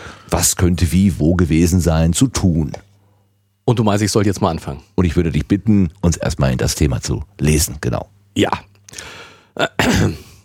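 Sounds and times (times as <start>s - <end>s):
speech: 0.3s - 2.9s, 3.7s - 10.3s
loud cough into the microphone: 9.6s - 10.4s.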